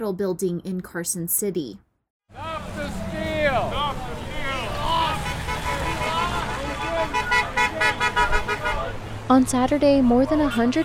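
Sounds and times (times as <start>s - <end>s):
speech: 0.0s - 4.0s, 9.3s - 10.8s
steady traffic noise: 2.3s - 10.8s
passing car horns honking: 2.4s - 9.1s.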